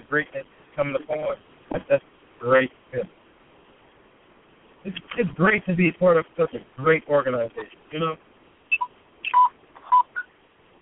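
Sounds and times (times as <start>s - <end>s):
faint hiss: 0.0s - 10.8s
speech: 0.1s - 3.1s, 4.8s - 8.3s
phone beeping in electronic tones: 8.7s - 10.3s.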